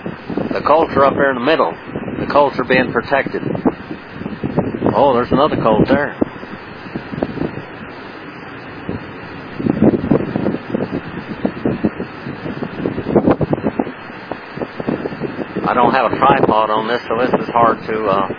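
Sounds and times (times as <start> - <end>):
brisk wind buffeting a handheld microphone outdoors: 0.0 - 18.3
speech: 0.5 - 3.7, 5.0 - 6.2, 15.8 - 18.3.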